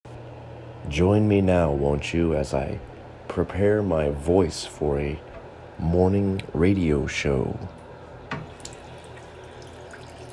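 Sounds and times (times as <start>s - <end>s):
speech: 0.9s - 7.8s
water running from an old sink tap: 8.4s - 10.3s.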